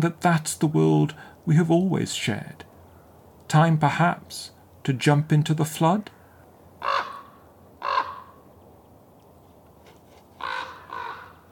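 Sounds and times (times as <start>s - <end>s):
speech: 0.0s - 2.7s, 3.5s - 6.2s
raven cawing: 6.1s - 8.4s, 10.4s - 11.5s.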